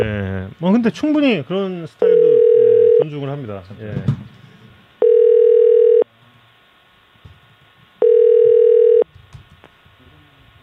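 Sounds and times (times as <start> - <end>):
speech: 0.0 - 2.2, 3.0 - 4.3
phone ringback tone of an unanswered call: 2.0 - 3.0, 5.0 - 6.0, 8.0 - 9.0.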